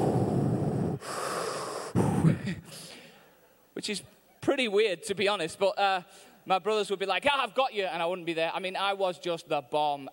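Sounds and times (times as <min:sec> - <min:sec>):
person imitating heavy raspy breathing: 0:00.0 - 0:03.1
speech: 0:03.8 - 0:10.1.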